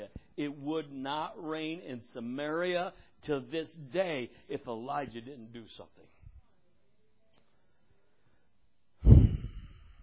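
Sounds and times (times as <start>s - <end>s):
speech: 0.4s - 6.0s
heavy breath caught close on a microphone: 8.0s - 10.0s.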